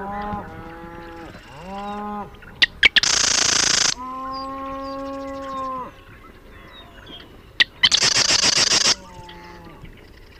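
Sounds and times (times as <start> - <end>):
marsh wren song with sharp clicks and buzzy rattling trill: 0.0 - 5.5, 7.6 - 10.3.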